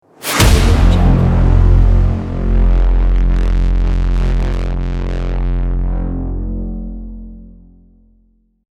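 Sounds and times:
cinematic braam: 0.1s - 8.1s.

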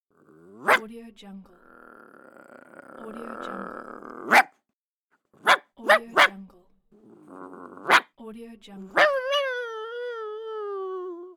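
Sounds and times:
dog barking angrily: 0.3s - 0.8s, 2.2s - 4.5s, 5.4s - 6.3s, 7.2s - 8.1s, 8.9s - 9.4s.

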